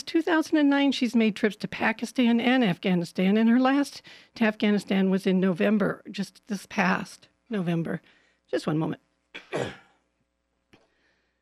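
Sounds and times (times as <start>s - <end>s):
speech: 0.1s - 9.8s
person coughing: 9.4s - 10.0s.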